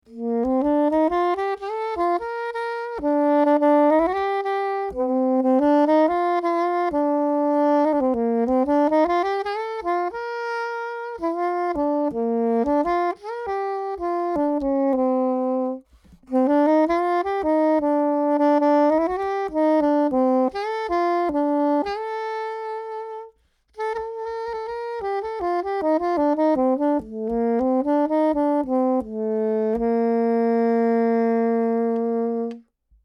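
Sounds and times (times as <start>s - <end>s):
saxophone playing: 0.0s - 32.8s.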